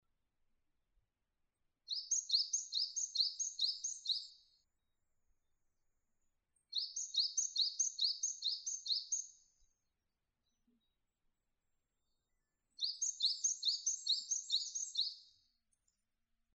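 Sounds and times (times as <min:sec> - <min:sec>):
Japanese tit singing: 0:01.9 - 0:04.5, 0:06.7 - 0:09.5, 0:12.8 - 0:15.3.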